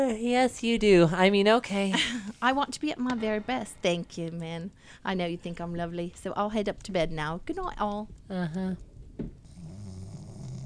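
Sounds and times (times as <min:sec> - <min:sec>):
speech: 0:00.0 - 0:09.4
loud buzzing snoring: 0:09.5 - 0:10.6.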